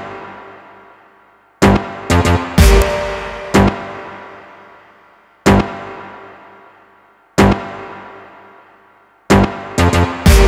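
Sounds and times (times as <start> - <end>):
stabs music loop: 1.7 - 4.7, 9.3 - 10.4.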